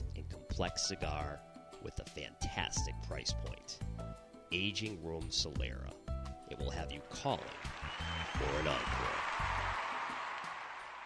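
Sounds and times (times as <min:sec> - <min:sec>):
speech: 0:00.6 - 0:09.5
standing golf crowd applauding: 0:07.4 - 0:11.0.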